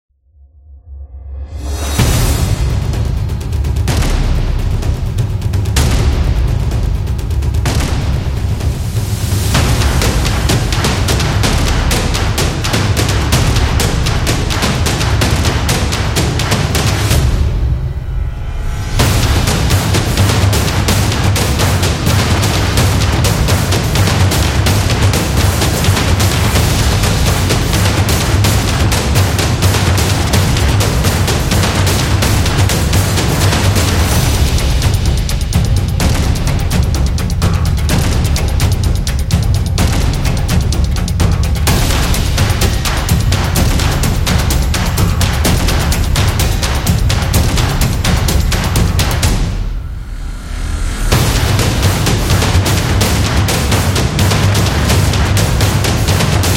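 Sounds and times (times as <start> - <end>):
Japanese taiko drums: 1.6 - 56.5.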